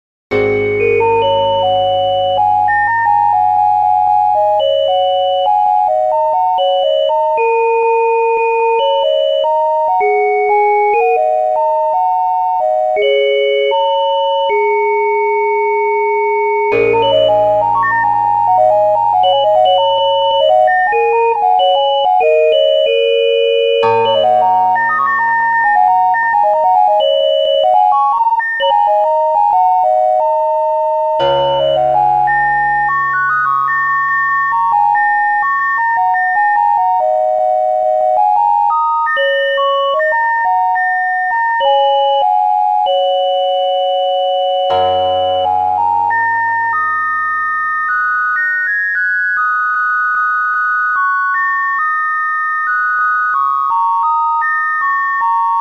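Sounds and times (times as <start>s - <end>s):
bassoon: 0.3s - 3.4s, 16.7s - 21.8s, 23.8s - 28.0s, 31.1s - 35.6s, 44.7s - 47.2s
glockenspiel: 0.3s - 37.3s, 38.0s - 55.5s
piano: 0.3s - 52.0s.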